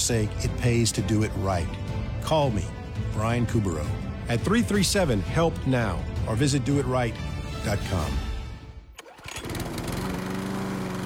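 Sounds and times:
speech: 0:00.0 - 0:08.3
zero-turn riding lawn mower engine sputtering to life and running: 0:09.0 - 0:11.0.

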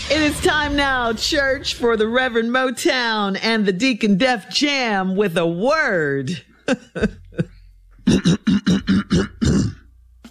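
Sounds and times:
speech: 0:00.1 - 0:07.5
laughter: 0:06.5 - 0:07.6
gruff voiced throat clearing: 0:06.8 - 0:10.2.

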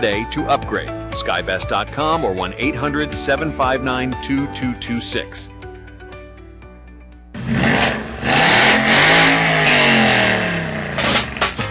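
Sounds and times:
speech: 0:00.0 - 0:05.6
car engine revving hard: 0:07.4 - 0:11.6.

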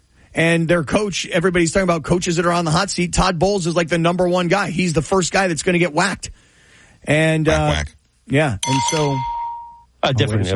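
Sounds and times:
speech: 0:00.4 - 0:06.4, 0:07.0 - 0:09.3, 0:10.0 - 0:10.5
bell sound effect ding: 0:08.6 - 0:10.0.

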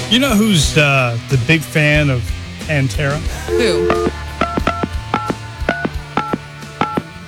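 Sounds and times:
speech: 0:00.1 - 0:04.2
low hum: 0:02.1 - 0:07.2
phone keypad dialing beeps: 0:03.5 - 0:07.2.

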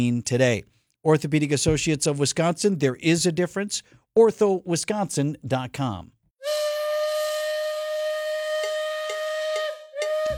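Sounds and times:
speech: 0:00.0 - 0:06.2
steam train whistle: 0:06.4 - 0:10.3.

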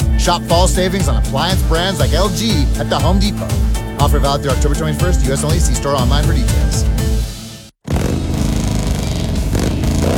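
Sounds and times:
speech: 0:00.2 - 0:07.0
loud Harley-Davidson motorcycle engine revving with throaty exhaust: 0:07.8 - 0:10.1.

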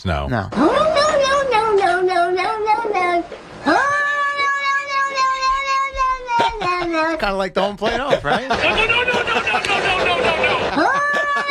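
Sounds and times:
speech: 0:00.0 - 0:00.8, 0:06.9 - 0:11.4
cat meowing loudly and insistently: 0:00.6 - 0:07.2, 0:10.8 - 0:11.4
laughter: 0:06.3 - 0:07.2, 0:07.8 - 0:11.4.

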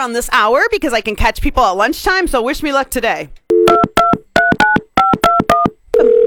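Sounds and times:
speech: 0:00.0 - 0:03.9
touch-tone telephone dialing beeps: 0:03.5 - 0:06.2.

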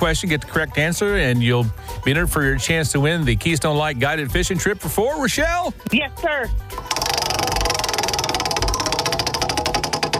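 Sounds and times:
speech: 0:00.0 - 0:07.0
prize wheel spinning with ratcheting clicks: 0:06.8 - 0:10.1.

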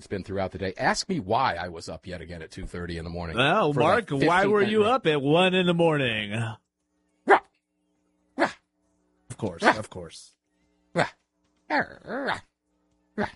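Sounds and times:
speech: 0:00.0 - 0:06.6, 0:09.4 - 0:12.5, 0:13.2 - 0:13.3
person imitating small Shih Tzu dog yappy barking: 0:08.4 - 0:08.6, 0:10.9 - 0:12.5, 0:13.2 - 0:13.3.

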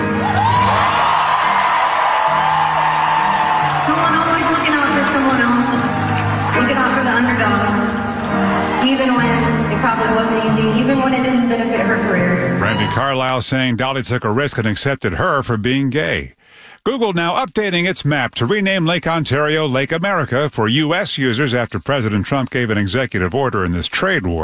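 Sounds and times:
arena crowd whoops and roaring cheers: 0:00.0 - 0:07.2, 0:08.0 - 0:09.3, 0:12.6 - 0:13.3
music: 0:00.0 - 0:13.4
speech: 0:09.9 - 0:24.4.

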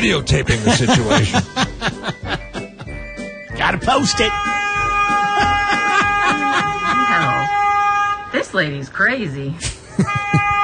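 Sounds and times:
speech: 0:00.0 - 0:02.2, 0:03.6 - 0:04.7, 0:08.3 - 0:10.5
laughter: 0:00.5 - 0:03.0, 0:05.0 - 0:07.6, 0:09.6 - 0:10.6
car horn honking: 0:03.8 - 0:08.8, 0:10.0 - 0:10.6
agitated voices shouting and talking: 0:04.1 - 0:07.9.

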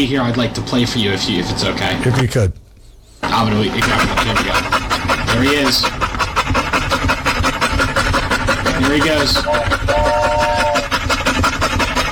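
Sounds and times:
speech: 0:00.0 - 0:02.6, 0:03.3 - 0:06.0, 0:08.8 - 0:10.4
dog panting: 0:03.2 - 0:12.1.

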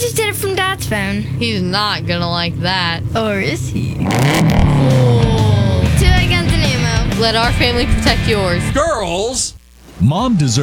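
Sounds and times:
speech: 0:00.0 - 0:05.5, 0:07.2 - 0:10.6
race car engine revving: 0:02.0 - 0:09.5.

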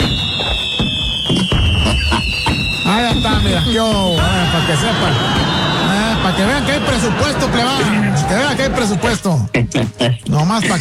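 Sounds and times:
loud sustained high firework whistle falling in pitch: 0:00.0 - 0:07.2
laughter: 0:01.8 - 0:02.7, 0:04.4 - 0:09.4
speech: 0:02.9 - 0:10.7.

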